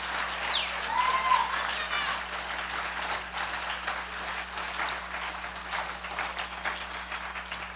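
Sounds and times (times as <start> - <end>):
high whistle: 0.0 - 1.2
church audience applauding after a baptism on Easter: 0.0 - 7.7.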